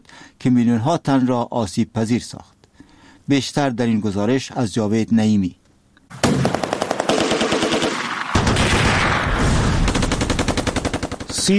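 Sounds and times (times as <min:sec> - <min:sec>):
speech: 0:00.4 - 0:02.6, 0:03.3 - 0:05.6
automatic gunfire: 0:06.1 - 0:11.5.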